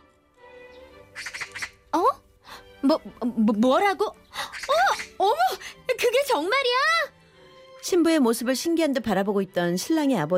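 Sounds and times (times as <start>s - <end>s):
magpie giving harsh rapid chattering calls: 1.1s - 1.8s, 4.4s - 5.6s
speech: 2.9s - 4.2s, 6.3s - 7.1s, 7.9s - 10.3s.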